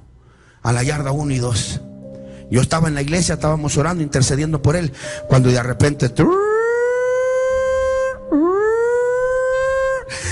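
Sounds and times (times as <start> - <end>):
speech: 0.6 - 1.9, 2.5 - 6.5
prison yard siren wailing: 6.2 - 10.0.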